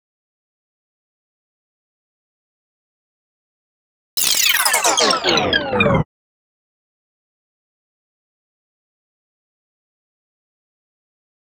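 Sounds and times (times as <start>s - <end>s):
complex electro synths: 4.2s - 6.1s.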